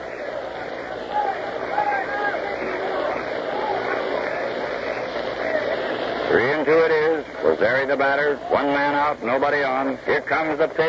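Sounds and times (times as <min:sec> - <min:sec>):
large ballpark crowd at a baseball game groaning: 0:00.0 - 0:06.5
speech: 0:07.6 - 0:10.8.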